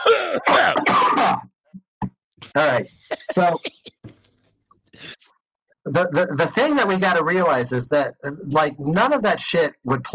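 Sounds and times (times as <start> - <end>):
harsh rasping coughing and throat clearing: 0.0 - 1.5, 3.1 - 4.2
speech: 0.3 - 0.8, 2.6 - 3.8, 5.9 - 10.1.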